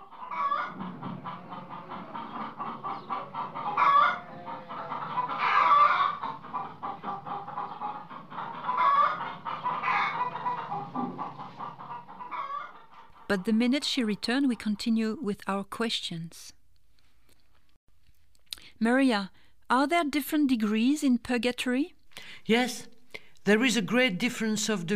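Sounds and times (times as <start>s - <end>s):
flock of chickens clucking and squawking: 0.0s - 15.0s
speech: 13.3s - 16.6s, 18.8s - 24.9s.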